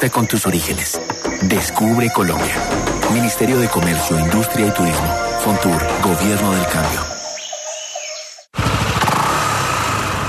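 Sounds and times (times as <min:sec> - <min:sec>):
speech: 0:00.0 - 0:07.1
birds chirping: 0:00.0 - 0:08.5
motorcycle scooter engine running: 0:08.6 - 0:10.2.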